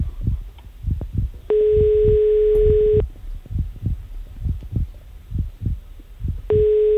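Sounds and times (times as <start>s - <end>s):
low rhythmic thumping: 0.0s - 6.9s
telephone ringback tone as a radio station calls a listener: 1.5s - 3.0s, 6.5s - 6.9s.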